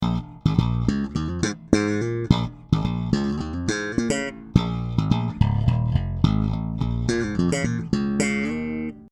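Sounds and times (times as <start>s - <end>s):
electric guitar through parallel treble boost: 0.0s - 9.0s.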